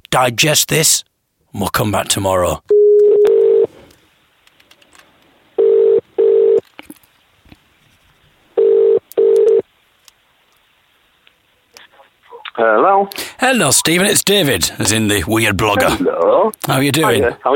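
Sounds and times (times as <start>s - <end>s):
speech: 0.1s - 2.7s, 12.6s - 17.5s
telephone line tone beeping in double pulses as a call is placed: 2.7s - 3.7s, 5.6s - 6.6s, 8.6s - 9.6s
faint telephone line hiss: 3.0s - 14.8s.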